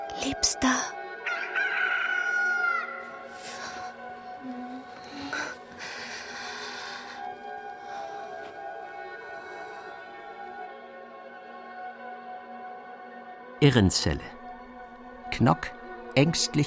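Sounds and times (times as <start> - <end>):
speech: 0.2 - 1.0, 13.6 - 14.4, 15.4 - 16.6
rooster crowing at dawn: 1.3 - 3.1.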